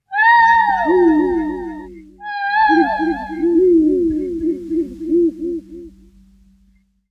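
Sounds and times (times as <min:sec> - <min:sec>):
owl crying: 0:00.1 - 0:05.9.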